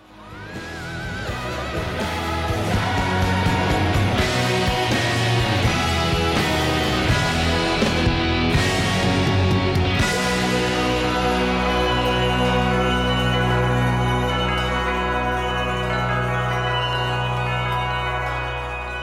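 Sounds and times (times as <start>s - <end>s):
loud full-band Christmas rock song: 0.0s - 19.0s
sleigh bells jingling: 0.4s - 19.0s.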